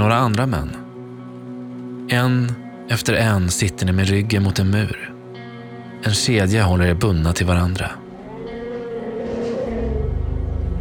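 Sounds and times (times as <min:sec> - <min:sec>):
speech: 0:00.0 - 0:00.8, 0:02.1 - 0:05.1, 0:06.0 - 0:08.0
elephant trumpeting: 0:08.1 - 0:10.8.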